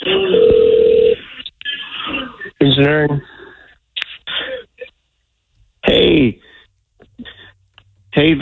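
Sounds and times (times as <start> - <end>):
telephone ringing tone: 0.2 - 1.2
speech: 2.8 - 3.3, 8.2 - 8.4.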